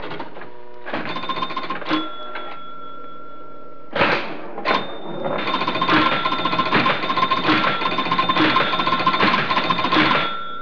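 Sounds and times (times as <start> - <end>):
pinball machine: 0.0 - 10.5.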